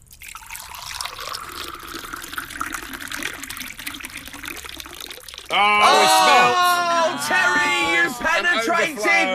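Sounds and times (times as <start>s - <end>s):
liquid pouring into a mug: 0.0s - 6.1s
speech: 5.5s - 6.6s
laughter: 5.6s - 9.3s.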